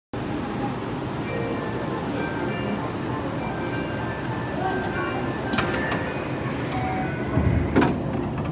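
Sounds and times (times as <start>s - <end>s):
train departing from Teradacho: 0.2s - 8.5s.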